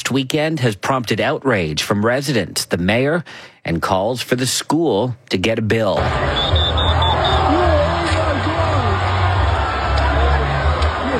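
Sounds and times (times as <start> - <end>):
speech: 0.1 - 7.6
large outdoor crowd babble: 6.0 - 11.1
people shouting in a crowd: 6.0 - 11.1
short high-pitched electronic beeps: 6.4 - 7.3.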